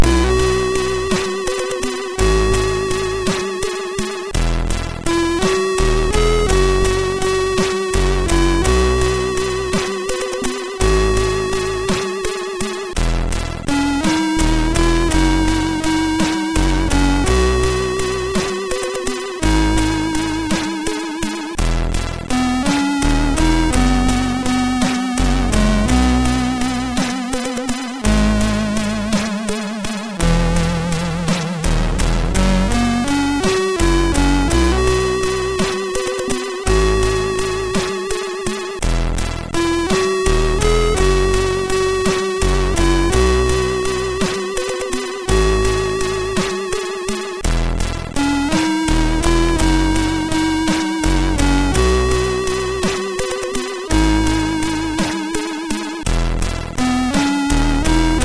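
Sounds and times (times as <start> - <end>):
MOS6581R3 SID chip music: 0.0 - 58.2.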